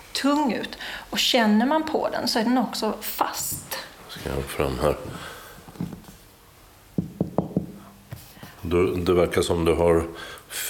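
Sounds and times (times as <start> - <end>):
speech: 0.2 - 3.6, 4.2 - 5.4, 8.7 - 10.6
softer taps on a thin copper-foil object: 5.6 - 6.2, 7.0 - 8.6
hollow knocks on a thin copper-foil object under construction: 7.0 - 8.2.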